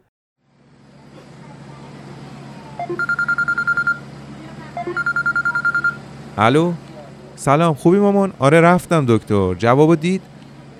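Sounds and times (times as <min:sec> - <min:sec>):
mobile phone ringing on a bus: 0:02.8 - 0:04.0, 0:04.8 - 0:06.0
speech: 0:02.9 - 0:03.3, 0:06.4 - 0:06.8, 0:07.4 - 0:10.3.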